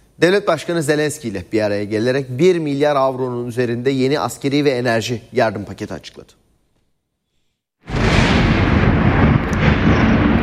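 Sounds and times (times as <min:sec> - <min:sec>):
speech: 0:00.2 - 0:06.4
explosion-like roar during an air raid in Kyiv: 0:07.8 - 0:10.4
sustained heavy rumbling noise during an air raid in Kyiv: 0:07.9 - 0:10.4.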